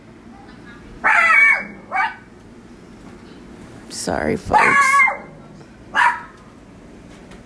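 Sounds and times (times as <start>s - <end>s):
dog barking: 1.0s - 2.3s, 4.5s - 6.4s
speech: 4.0s - 5.1s.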